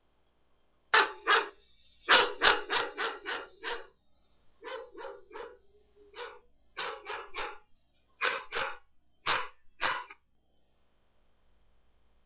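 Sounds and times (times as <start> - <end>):
dog barking: 0.9 - 3.9, 4.6 - 7.6, 8.2 - 10.2.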